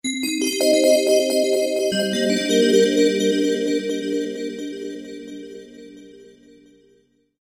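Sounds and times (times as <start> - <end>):
chimes: 0.2 - 5.6
bells: 0.3 - 5.2.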